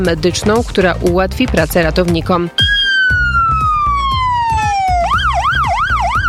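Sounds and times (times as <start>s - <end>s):
speech: 0.0s - 3.2s
siren of a new emergency medical service ambulance: 2.6s - 6.2s.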